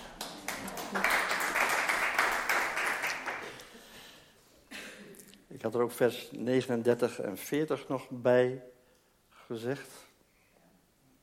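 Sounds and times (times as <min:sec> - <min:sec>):
few people applauding: 0:00.0 - 0:03.9
speech: 0:05.6 - 0:08.8, 0:09.5 - 0:10.0.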